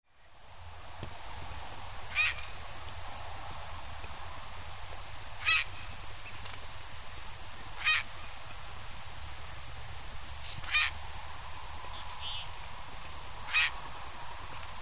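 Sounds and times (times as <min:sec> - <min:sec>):
grey heron at North Craig reservoir: 0:02.1 - 0:03.3, 0:04.2 - 0:09.6, 0:10.3 - 0:14.8.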